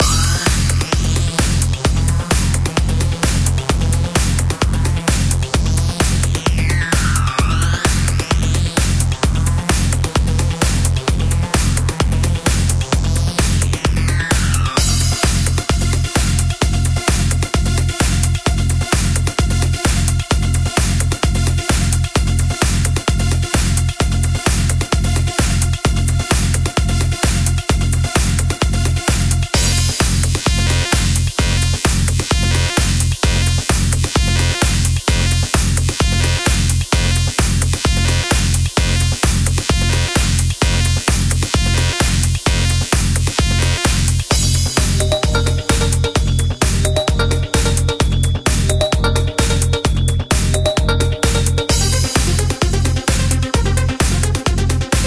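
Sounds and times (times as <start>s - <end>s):
electronic dance music: 0.0s - 55.0s.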